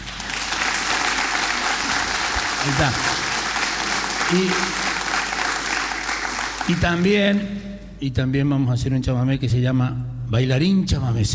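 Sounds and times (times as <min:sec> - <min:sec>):
audience applause: 0:00.0 - 0:07.2
speech: 0:02.6 - 0:03.1, 0:04.3 - 0:04.9, 0:06.7 - 0:11.3.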